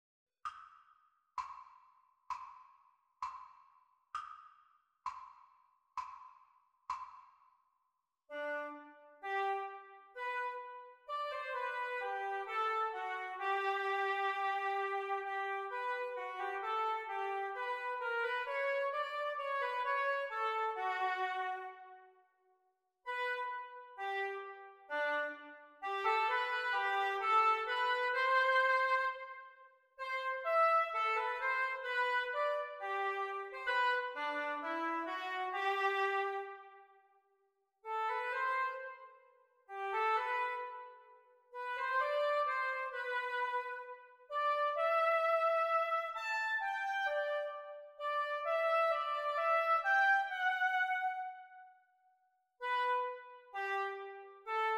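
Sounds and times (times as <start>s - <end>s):
oboe duet practice: 8.3s - 21.9s, 23.1s - 29.4s, 30.0s - 36.8s, 37.9s - 39.0s, 39.7s - 41.0s, 41.6s - 51.6s, 52.6s - 54.7s.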